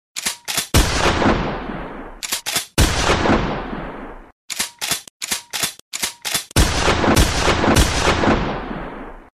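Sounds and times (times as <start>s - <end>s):
shotgun shots: 0.7s - 4.2s, 6.5s - 9.3s.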